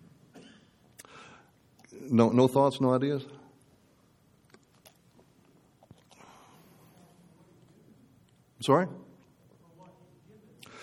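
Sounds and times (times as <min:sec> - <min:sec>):
cough: 0:00.3 - 0:00.8
speech: 0:02.0 - 0:03.4, 0:08.6 - 0:09.0.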